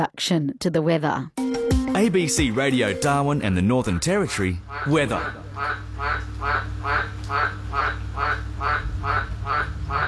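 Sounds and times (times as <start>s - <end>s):
speech: 0.0s - 10.0s
low continuous drone: 2.4s - 10.0s
frogs croaking: 4.3s - 10.0s.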